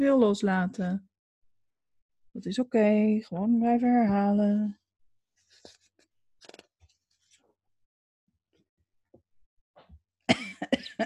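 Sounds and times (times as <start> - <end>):
speech: 0.0 - 1.1, 2.4 - 4.8, 10.8 - 11.0
person coughing: 10.3 - 11.0.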